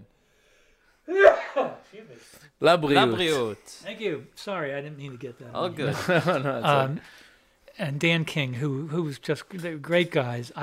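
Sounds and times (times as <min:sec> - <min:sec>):
person sneezing: 0:01.1 - 0:01.9
speech: 0:01.1 - 0:07.2, 0:07.8 - 0:10.6
laughter: 0:05.6 - 0:07.0.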